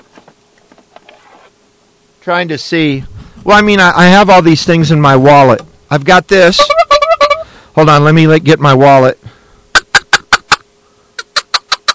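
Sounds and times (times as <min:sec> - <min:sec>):
speech: 0:02.2 - 0:06.8, 0:07.8 - 0:09.2
hand-blown chukar game call clucking: 0:06.4 - 0:07.5, 0:09.7 - 0:10.6.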